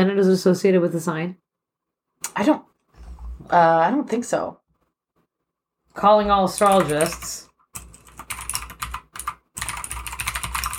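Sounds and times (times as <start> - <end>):
speech: 0.0 - 1.4, 2.2 - 2.7, 3.4 - 4.6, 6.0 - 7.5
rapid computer keyboard typing: 5.9 - 10.7.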